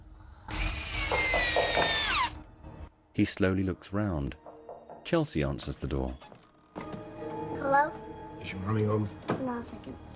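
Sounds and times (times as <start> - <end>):
power drill driving screws into window frames: 0.5 - 2.4
speech: 3.2 - 4.4, 5.1 - 6.4, 7.7 - 10.1.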